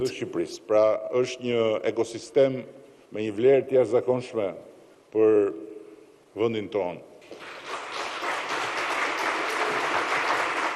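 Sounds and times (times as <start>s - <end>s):
speech: 0.0s - 5.7s, 6.4s - 7.7s
audience applause after a speech: 7.3s - 10.7s.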